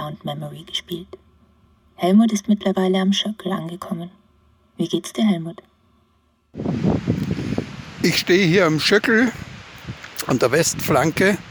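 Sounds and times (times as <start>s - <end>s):
speech: 0.1s - 1.2s, 2.0s - 4.2s, 4.8s - 5.7s, 6.5s - 7.2s, 8.0s - 9.5s, 10.2s - 11.5s
strong wind rustling leaves and branches of trees: 6.6s - 11.5s.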